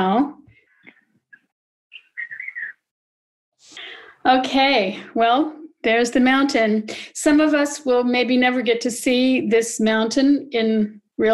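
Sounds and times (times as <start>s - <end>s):
birds singing at sunrise at the foot of a mountain: 1.9s - 2.8s
speech: 4.2s - 11.3s.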